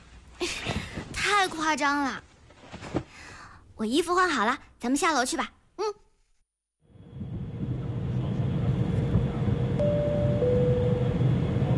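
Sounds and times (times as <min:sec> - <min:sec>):
speech: 0:01.4 - 0:02.3, 0:03.8 - 0:06.0
airplane cabin rumble during descent: 0:06.9 - 0:11.7.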